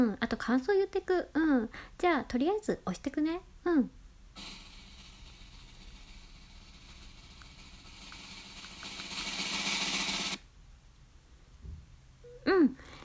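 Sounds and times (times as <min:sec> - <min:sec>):
speech: 0:00.0 - 0:04.6
snare drum roll: 0:04.4 - 0:10.4.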